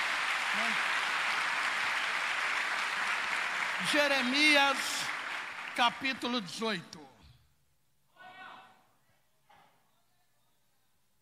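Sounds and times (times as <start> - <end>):
church congregation applauding: 0.0 - 7.1
speech: 3.8 - 5.1, 5.8 - 7.0.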